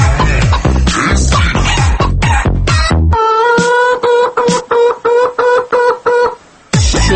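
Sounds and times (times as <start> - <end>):
chicken clucking: 0.0 - 6.4.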